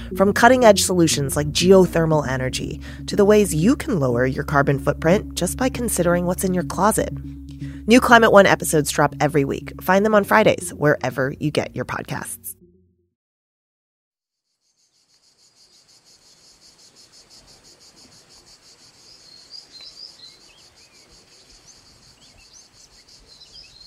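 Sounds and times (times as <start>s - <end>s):
speech: 0.1s - 12.6s
insect chorus of crickets in a native southern European forest: 14.7s - 23.8s
bird chirps in a native southern European forest: 14.8s - 23.8s.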